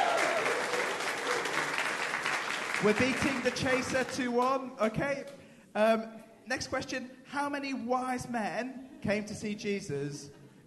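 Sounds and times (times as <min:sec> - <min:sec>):
audience applause at a quiz show: 0:00.0 - 0:04.2
speech: 0:02.8 - 0:10.6.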